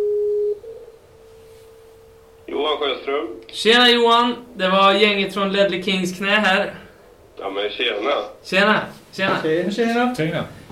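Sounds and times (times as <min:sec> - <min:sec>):
Skype call tone beep: 0:00.0 - 0:02.2
speech: 0:02.7 - 0:06.8, 0:07.4 - 0:10.6.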